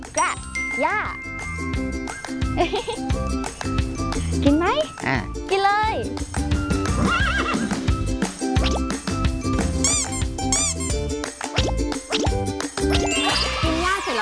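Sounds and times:
tinkling chimes: 0.0s - 3.4s
music: 0.0s - 14.2s
speech: 0.2s - 1.7s, 2.6s - 6.5s
horse whinnying: 7.0s - 7.8s.

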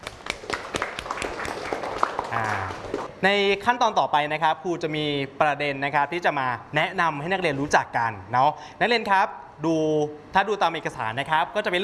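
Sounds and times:
classroom students clapping for a classmate: 0.0s - 3.1s
speech: 2.3s - 11.8s.

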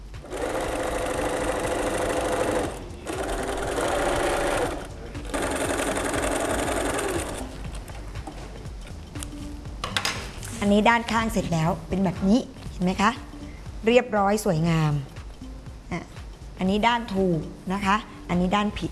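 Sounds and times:
sewing machine stitching canvas or cotton fabric: 0.2s - 7.5s
speech: 10.7s - 15.1s, 15.9s - 18.9s.

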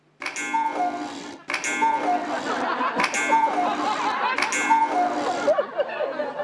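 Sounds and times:
cuckoo clock chiming on the second floor of a house: 0.2s - 5.7s
brighter tone between cuckoo clock strikes: 0.3s - 2.4s, 3.0s - 5.3s
laughter: 1.4s - 6.4s.

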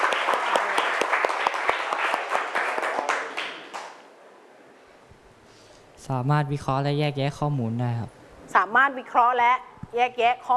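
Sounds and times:
room of students applauding: 0.0s - 4.0s
speech: 6.1s - 10.5s.

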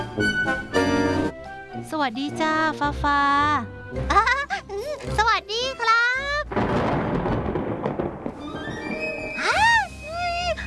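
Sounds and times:
speech: 0.2s - 0.8s, 1.8s - 6.0s
loud rolling thunder rumble: 6.5s - 10.4s.

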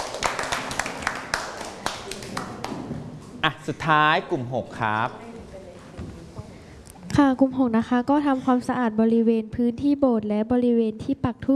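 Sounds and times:
group of students clapping: 0.0s - 3.2s
speech: 3.4s - 5.2s, 7.2s - 11.5s.

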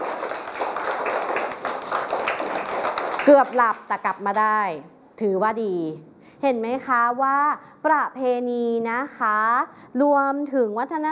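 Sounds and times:
class clapping loudly for a classmate: 0.0s - 4.5s
speech: 3.2s - 11.1s.

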